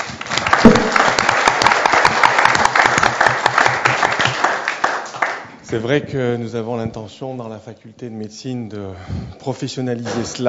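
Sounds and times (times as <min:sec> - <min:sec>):
room full of people clapping: 0:00.0 - 0:05.7
speech: 0:05.7 - 0:10.4.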